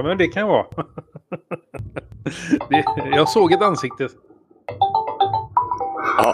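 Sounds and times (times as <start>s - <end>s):
speech: 0.0s - 4.8s, 6.2s - 6.3s
laughter: 0.8s - 3.2s
video-call ringtone in a web browser: 2.6s - 6.3s.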